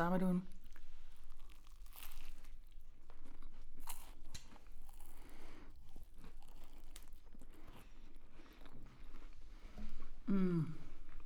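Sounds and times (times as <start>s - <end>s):
crunching and crinkling of a flaky pastry topped with whipped cream: 0.5s - 9.4s
brief appreciative hum: 10.3s - 10.8s.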